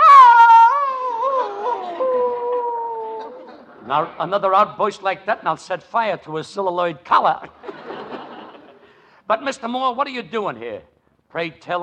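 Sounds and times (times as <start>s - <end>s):
drawn-out dog howl: 0.0s - 3.5s
laughter: 1.3s - 4.2s, 7.6s - 9.0s
speech: 3.9s - 7.6s, 9.3s - 11.8s.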